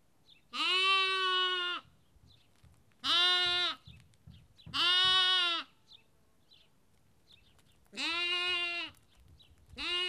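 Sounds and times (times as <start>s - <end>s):
lamb bleating in Kakopetria Cyprus: 0.5s - 1.9s, 3.0s - 3.9s, 4.7s - 5.8s, 8.0s - 9.0s, 9.8s - 10.0s.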